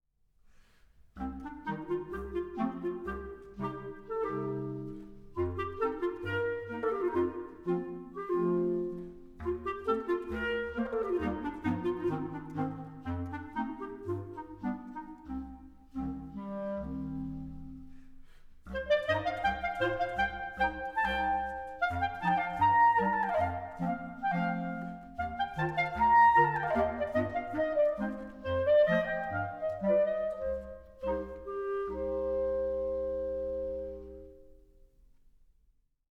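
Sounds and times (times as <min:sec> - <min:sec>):
clarinet quartet playing folk dances: 0:01.2 - 0:34.6.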